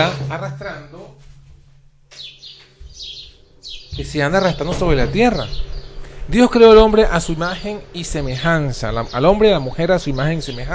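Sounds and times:
speech: 0.0 - 1.3, 2.1 - 2.4, 4.0 - 5.7, 6.3 - 10.7
birds singing in high chirping phrases: 2.1 - 10.7.

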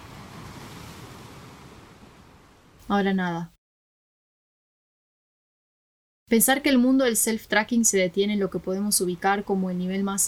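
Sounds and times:
slight windy hiss: 0.0 - 2.9
ocean surf waves breaking: 0.0 - 3.2
speech: 2.9 - 3.5, 6.3 - 10.2.

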